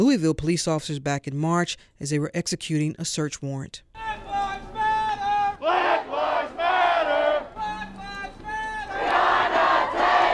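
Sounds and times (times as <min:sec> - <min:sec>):
speech: 0:00.0 - 0:04.2
large crowd of protesters chanting at a demonstration in downtown Atlanta: 0:04.9 - 0:10.3.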